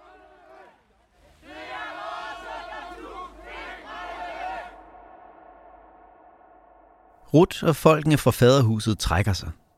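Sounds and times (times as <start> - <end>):
large crowd chanting protest slogans in unison at a youth house: 0.0 - 7.2
speech: 7.3 - 9.6.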